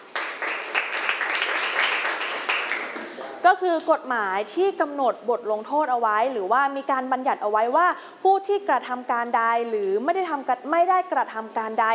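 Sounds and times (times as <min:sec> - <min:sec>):
classroom of people applauding a student: 0:00.0 - 0:03.2
speech: 0:03.4 - 0:11.9.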